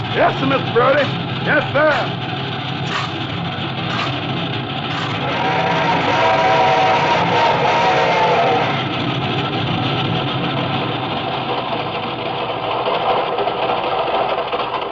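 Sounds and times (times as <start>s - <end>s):
rhythmic knocking beats: 0.0s - 10.8s
steam train rumbling on rails climbing a mountain at slow speed: 0.0s - 14.8s
speech: 0.2s - 2.3s.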